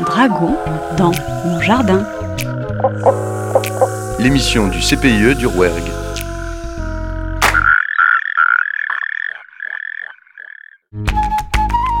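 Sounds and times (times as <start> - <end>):
music: 0.0 - 7.6, 10.9 - 11.9
Mediterranean tree frog croaking: 0.1 - 10.9
speech: 0.2 - 3.2, 4.2 - 6.0.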